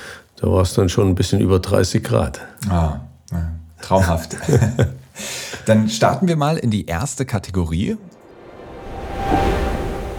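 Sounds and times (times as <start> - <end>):
speech: 0.4 - 8.2
laughter: 3.8 - 5.8
ocean surf: 8.2 - 10.1.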